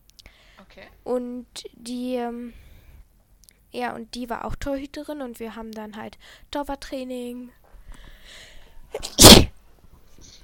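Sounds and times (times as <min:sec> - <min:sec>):
speech: 0:00.6 - 0:02.7, 0:03.7 - 0:07.6
single sharp sneeze with inhaled build-up: 0:09.0 - 0:09.6.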